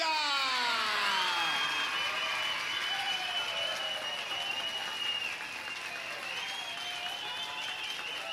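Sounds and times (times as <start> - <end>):
audience shouting and cheering: 0.0 - 4.2
large audience applauding: 0.0 - 8.3
shrill whistles from audience: 1.0 - 8.3.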